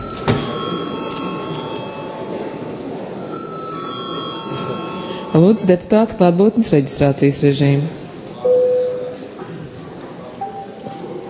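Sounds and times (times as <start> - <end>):
electric bell ringing in the Latvian parliament chamber: 0.0 - 5.7
speech: 5.4 - 8.0.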